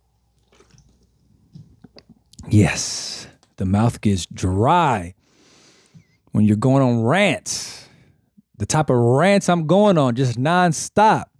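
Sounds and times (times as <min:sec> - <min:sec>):
gulp-like swallow: 0:00.4 - 0:02.5
person sipping water with wet mouth noises and slurping: 0:00.4 - 0:02.5
speech: 0:02.5 - 0:05.2, 0:06.3 - 0:07.8, 0:08.6 - 0:11.3.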